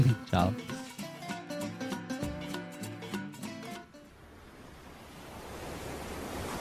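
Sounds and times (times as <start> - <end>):
music: 0.0 - 4.1
speech: 0.2 - 0.7
ocean waves breaking on a shore: 4.0 - 6.5.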